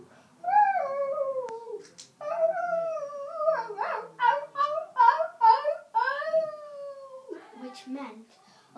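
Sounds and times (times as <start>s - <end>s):
person imitating a dog with howl-like barks: 0.4s - 7.9s.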